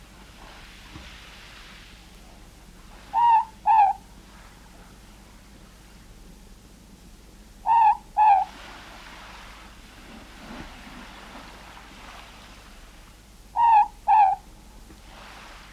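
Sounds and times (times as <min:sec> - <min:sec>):
faint hiss and soft rushing noise: 0:00.0 - 0:15.7
morepork paired hooting notes in New Zealand: 0:03.0 - 0:04.1, 0:07.6 - 0:08.6, 0:13.5 - 0:14.5.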